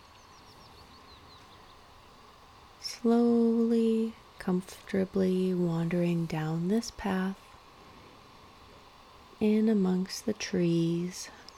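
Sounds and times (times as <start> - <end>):
faint birds chirping in trees: 0.0 - 2.2
steady soft rushing noise: 0.0 - 11.5
speech: 3.0 - 7.4, 9.4 - 11.4.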